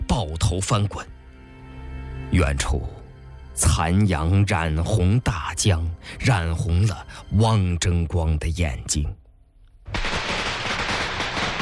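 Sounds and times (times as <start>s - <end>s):
speech: 0.2s - 1.2s, 2.3s - 3.0s, 3.6s - 9.2s
string of firecrackers going off: 9.9s - 11.6s.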